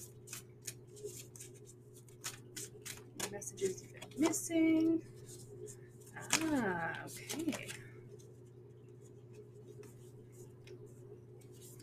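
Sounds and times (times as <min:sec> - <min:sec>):
deck of cards being shuffled: 0:00.0 - 0:08.3
steady low hum: 0:00.0 - 0:11.8
speech: 0:03.4 - 0:05.2, 0:06.4 - 0:07.8.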